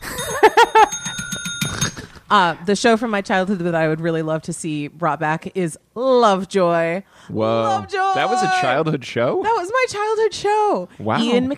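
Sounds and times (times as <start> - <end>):
bell rung as a joke sound effect: 0.0 - 2.2
speech: 2.3 - 11.5.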